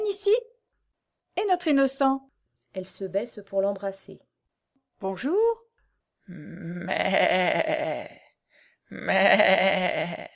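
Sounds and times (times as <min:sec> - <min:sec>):
speech: 0:01.5 - 0:04.3, 0:05.0 - 0:05.6, 0:06.3 - 0:08.2, 0:08.9 - 0:10.3
goat bleating: 0:06.8 - 0:08.2, 0:09.0 - 0:10.3.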